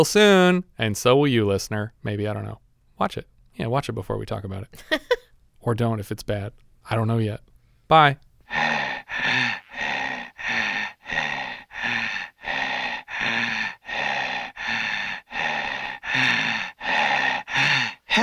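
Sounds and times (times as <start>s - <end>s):
speech: 0.0s - 8.8s
voice imitating heavy menacing horror-film breathing: 7.6s - 18.2s.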